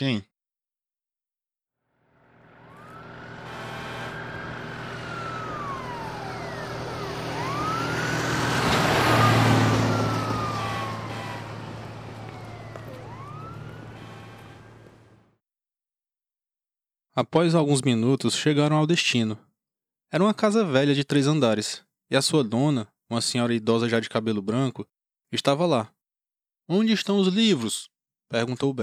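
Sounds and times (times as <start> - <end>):
speech: 0.0 - 0.3, 17.2 - 19.5, 20.1 - 26.0, 26.7 - 28.8
fire truck siren wailing after a fire alarm: 2.1 - 15.3.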